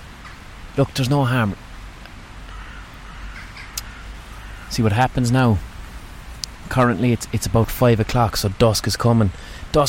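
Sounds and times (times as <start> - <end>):
speech: 0.8 - 1.6, 4.8 - 5.7, 6.7 - 9.8
crows cawing near their nests in trees at dusk: 2.4 - 5.2.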